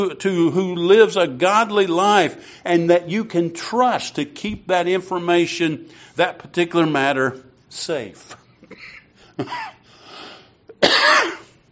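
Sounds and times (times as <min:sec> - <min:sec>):
speech: 0:00.0 - 0:08.8, 0:09.4 - 0:09.8
person coughing: 0:08.7 - 0:09.8, 0:10.7 - 0:11.6.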